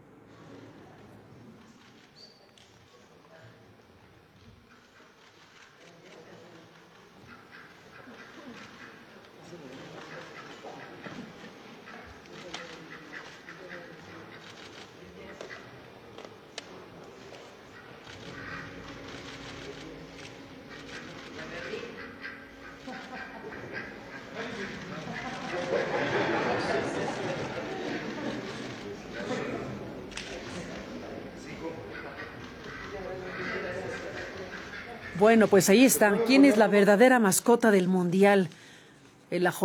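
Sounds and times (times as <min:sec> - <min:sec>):
faint indistinct voices: 0:00.0 - 0:35.3
laughter: 0:19.7 - 0:35.3
duck quacking: 0:22.0 - 0:24.4
speech: 0:35.2 - 0:38.6, 0:39.3 - 0:39.6.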